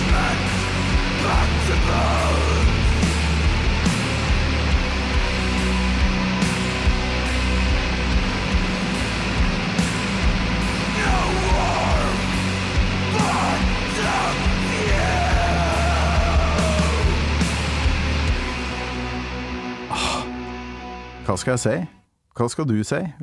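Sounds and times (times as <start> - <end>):
harsh yelled vocals: 0.0 - 3.1, 10.7 - 17.5
slow heavy sludge doom metal music: 0.0 - 21.3
distorted guitars: 0.0 - 21.7
speech: 21.4 - 23.2.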